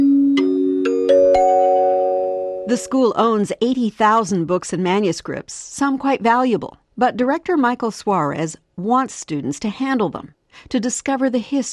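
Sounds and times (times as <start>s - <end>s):
chime notes stepping upward: 0.0s - 3.1s
sustained tone: 1.4s - 3.1s
speech: 2.7s - 11.7s.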